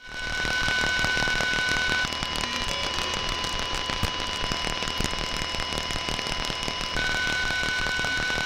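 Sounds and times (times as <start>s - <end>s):
loud continuous crackling static from RFID reader and transponder radio communication: 0.0s - 8.4s
rapid stuttering clicks from RFID reader and transponder radio communication: 0.5s - 7.0s.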